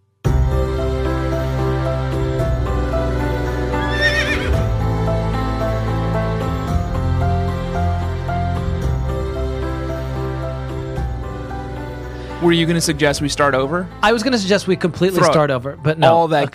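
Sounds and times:
continuous music bed: 0:00.0 - 0:16.5
horse whinnying: 0:03.8 - 0:04.6
speech: 0:12.4 - 0:16.5.

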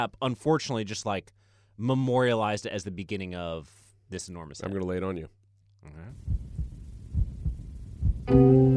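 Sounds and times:
speech: 0:00.0 - 0:06.4, 0:08.3 - 0:08.7
baby's heartbeat as soft low thumps: 0:06.2 - 0:08.3.

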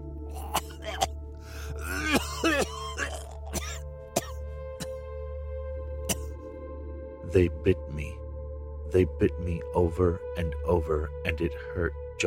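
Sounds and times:
man groaning and gasping: 0:00.2 - 0:03.6
man coughing up blood: 0:00.4 - 0:01.1, 0:01.7 - 0:05.0, 0:06.1 - 0:06.3
speech: 0:07.3 - 0:08.1, 0:08.9 - 0:12.2.

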